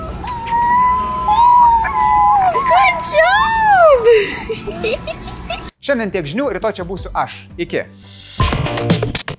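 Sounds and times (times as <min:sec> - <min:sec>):
puppy howling and whining: 0:00.0 - 0:04.4
laughter: 0:03.7 - 0:05.7
speech: 0:04.2 - 0:09.2.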